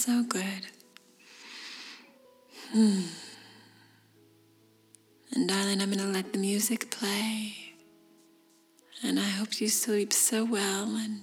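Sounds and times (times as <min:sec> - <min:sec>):
speech: 0:00.0 - 0:00.8, 0:02.7 - 0:03.2, 0:05.3 - 0:07.6, 0:09.0 - 0:11.2
deep slow breathing close to the mic: 0:01.2 - 0:04.2.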